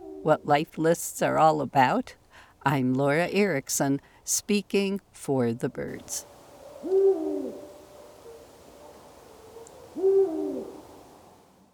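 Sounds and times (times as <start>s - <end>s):
speech: 0.2s - 7.0s
Eurasian Eagle-Owl giving deep booming hoots in France: 6.4s - 11.3s.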